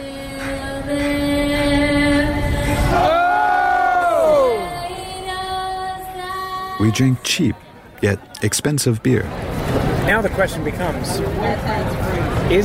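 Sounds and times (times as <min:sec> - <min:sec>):
large ballpark crowd singing the national anthem: 0:00.0 - 0:08.0
speech: 0:00.9 - 0:01.2, 0:06.8 - 0:12.6
ballpark crowd shouting in unison: 0:02.9 - 0:04.7.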